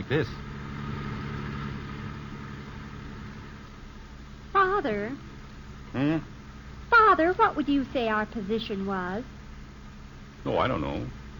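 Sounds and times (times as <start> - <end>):
road noise: 0.0 - 4.2
car engine idling in busy traffic: 0.0 - 8.6
speech: 0.1 - 0.5, 4.6 - 5.3, 5.9 - 9.4, 10.4 - 11.2.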